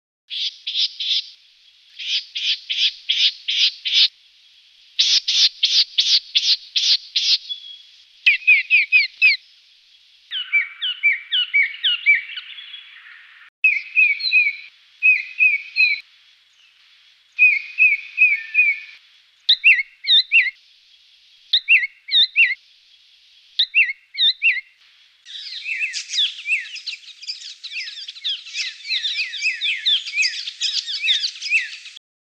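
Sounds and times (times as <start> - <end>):
white-naped honeyeater calling in a Canberra garden: 2.0 - 4.1, 5.0 - 9.4, 10.3 - 16.0, 17.4 - 20.6, 21.5 - 22.6, 23.6 - 24.7, 25.3 - 32.0.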